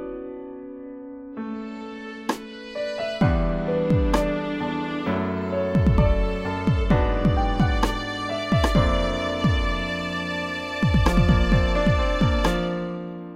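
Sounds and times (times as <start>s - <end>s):
string instruments: 1.4s - 13.3s.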